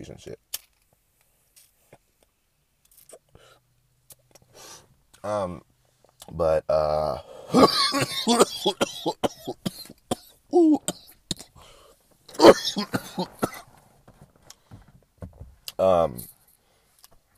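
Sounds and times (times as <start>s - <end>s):
speech: 0.0s - 0.6s, 5.2s - 5.7s, 6.3s - 9.9s, 10.5s - 11.0s, 12.4s - 13.4s, 15.8s - 16.3s
man clearing throat: 7.5s - 11.6s, 12.3s - 13.7s
man coughing after smoking: 7.5s - 11.6s, 12.3s - 13.7s.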